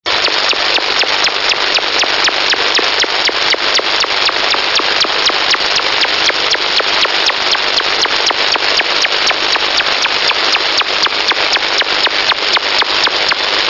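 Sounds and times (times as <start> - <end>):
radar signal: 0.1 - 13.5.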